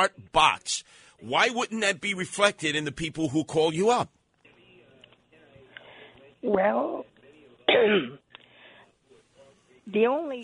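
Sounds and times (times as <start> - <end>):
speech: 0.0 - 4.2, 6.4 - 7.1, 7.7 - 8.2, 9.9 - 10.4
phone caller clearing phlegm from throat: 7.7 - 8.2.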